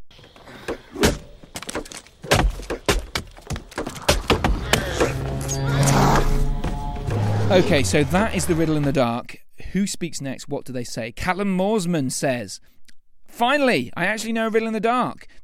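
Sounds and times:
axe chopping wood: 0.7s - 5.0s
horn blast: 4.7s - 9.0s
speech: 7.5s - 15.4s.

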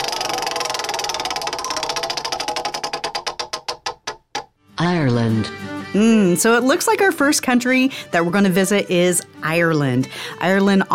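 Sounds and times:
prize wheel spinning and ticking: 0.0s - 4.2s
speech: 4.8s - 10.9s.

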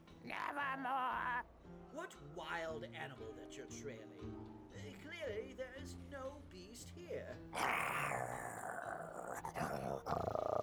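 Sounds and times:
speech: 0.2s - 10.5s
dog growling: 7.6s - 10.6s.

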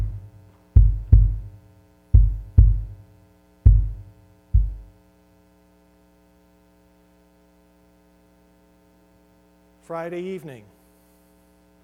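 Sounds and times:
slow heartbeat thumping: 0.0s - 3.0s, 3.6s - 4.9s
low steady hum: 0.0s - 11.8s
speech: 9.9s - 10.8s.

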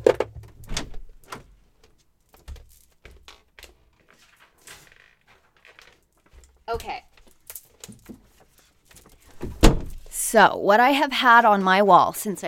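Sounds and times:
door clicking and swinging open: 0.6s - 1.4s
printed paper sheet crinkling as it is pulled off a wall: 2.6s - 9.4s
speech: 6.7s - 7.1s, 10.3s - 12.4s.

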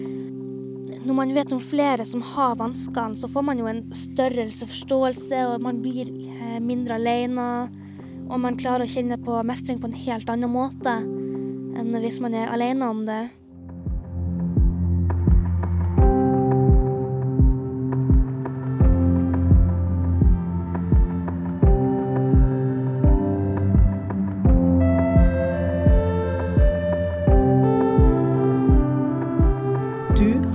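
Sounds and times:
speech: 1.0s - 11.2s, 11.9s - 13.4s
mellow instrumental podcast theme music: 13.4s - 30.5s.

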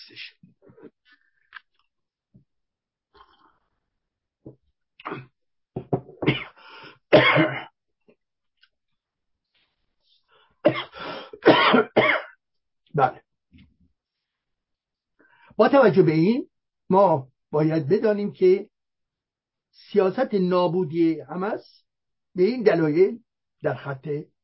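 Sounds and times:
speech: 0.1s - 1.0s, 13.0s - 13.2s, 15.6s - 18.7s, 19.8s - 21.8s, 22.4s - 24.3s
harsh coughing: 5.0s - 5.3s, 6.2s - 7.7s, 10.7s - 12.3s.

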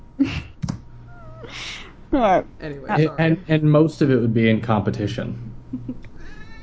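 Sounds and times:
speech: 2.1s - 6.1s
cat making short breathy meows and chirps: 6.2s - 6.6s.

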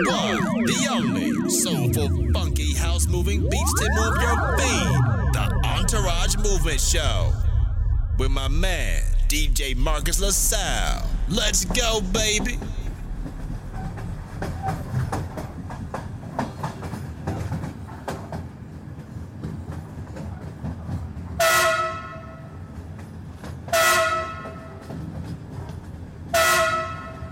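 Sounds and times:
speech: 0.0s - 7.5s, 8.2s - 12.8s
train rumbling and clacking: 1.6s - 27.3s
train horn blasts: 21.4s - 22.5s, 23.7s - 24.8s, 26.3s - 27.3s.

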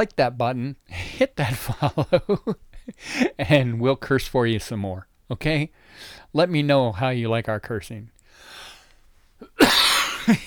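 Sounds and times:
speech: 0.0s - 8.6s, 9.4s - 10.4s
sharp dry cough: 9.4s - 10.4s.

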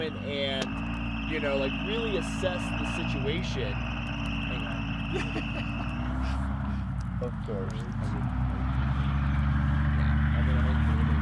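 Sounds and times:
diesel truck engine rumbling: 0.0s - 11.2s
speech: 0.1s - 5.7s, 7.2s - 8.4s
laughter: 2.6s - 6.9s, 10.1s - 11.1s.

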